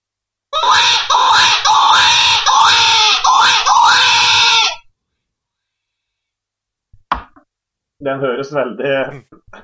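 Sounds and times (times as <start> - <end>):
desperate screeching call blown on predator whistle: 0.6 - 4.9
speech: 8.0 - 9.4.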